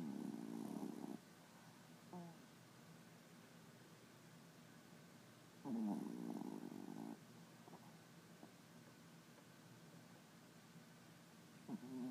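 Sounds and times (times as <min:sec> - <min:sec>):
small dog snoring: 0:00.0 - 0:01.2, 0:02.1 - 0:02.4, 0:05.6 - 0:07.8, 0:11.6 - 0:12.0
background hiss: 0:00.0 - 0:12.0.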